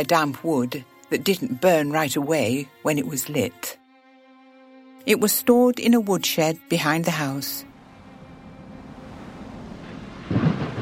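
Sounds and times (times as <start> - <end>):
speech: 0.0 - 3.8, 5.0 - 7.7
low rumble of thunder: 7.7 - 10.8
steady hiss of rain: 7.8 - 10.8.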